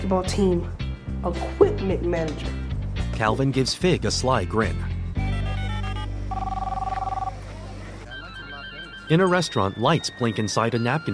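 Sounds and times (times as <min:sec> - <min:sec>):
speech: 0:00.1 - 0:02.6, 0:03.2 - 0:04.9, 0:09.1 - 0:11.1
cell phone ringing with electronic trill: 0:05.2 - 0:07.4, 0:08.0 - 0:11.1.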